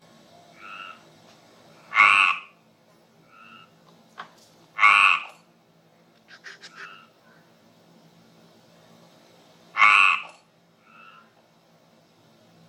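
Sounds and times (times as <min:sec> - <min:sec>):
Mediterranean tree frog calling: 0:00.6 - 0:01.0, 0:01.8 - 0:02.6, 0:03.3 - 0:03.8, 0:04.8 - 0:05.4, 0:06.3 - 0:07.1, 0:09.8 - 0:11.3.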